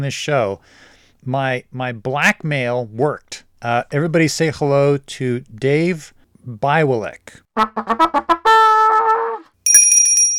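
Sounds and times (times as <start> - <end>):
speech: 0.0 - 8.4
bright high metallic ding: 9.7 - 10.3
quick rhythmic jingle of chimes: 9.7 - 10.3
sustained ringing bell tone: 9.7 - 10.3.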